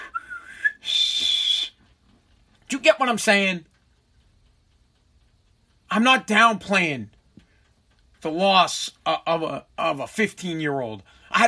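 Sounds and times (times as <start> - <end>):
person mimicking a police whistle with their mouth: 0.0 - 1.8
speech: 2.7 - 3.7, 6.0 - 7.2, 8.2 - 11.4.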